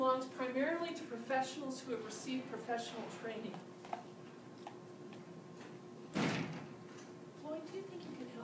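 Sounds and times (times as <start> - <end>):
speech: 0.0 - 4.2
door slamming shut: 6.1 - 6.8.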